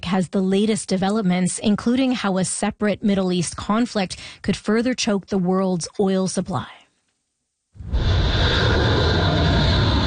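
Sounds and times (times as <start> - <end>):
speech: 0.1 - 6.8
jet taking off from aircraft carrier: 7.8 - 10.0.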